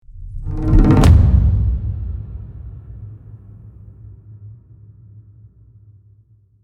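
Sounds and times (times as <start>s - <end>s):
cinematic tribal drum impact hit: 0.2s - 3.9s.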